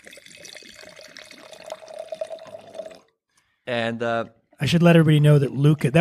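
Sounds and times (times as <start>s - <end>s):
Nebbiolo wine poured into a glass: 0.0s - 3.1s
speech: 3.7s - 6.0s.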